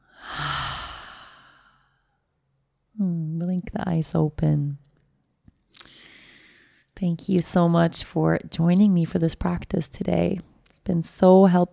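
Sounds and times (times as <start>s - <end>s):
deep breath let out through the open mouth as a sigh: 0.0s - 1.9s
speech: 3.0s - 4.8s, 7.0s - 11.7s.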